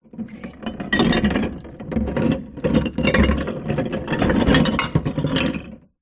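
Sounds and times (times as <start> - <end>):
beer bottles moving in water in a plastic esky: 0.0 - 5.9.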